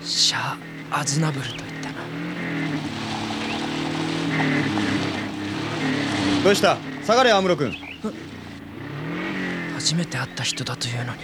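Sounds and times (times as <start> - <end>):
car engine humming as the car slowly moves off: 0.0 - 11.2
speech: 0.1 - 2.1, 4.4 - 5.0, 6.2 - 8.3, 9.8 - 11.2.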